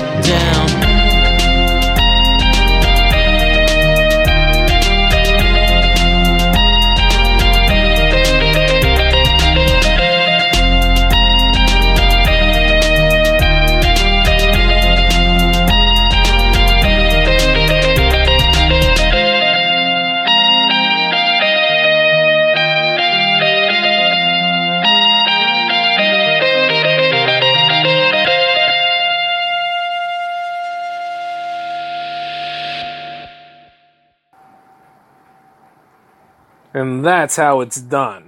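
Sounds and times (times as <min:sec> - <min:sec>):
music track with heavy bass and drums: 0:00.0 - 0:19.5
effected synth melodies: 0:00.0 - 0:32.3
speech: 0:00.2 - 0:00.8, 0:37.2 - 0:38.2.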